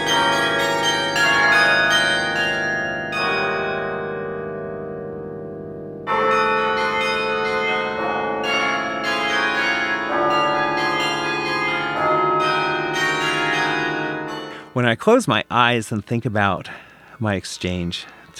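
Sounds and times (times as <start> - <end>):
automatic carillon bells in Amsterdam driven by a pin drum: 0.0 - 5.4, 6.0 - 14.8
speech: 14.8 - 18.3.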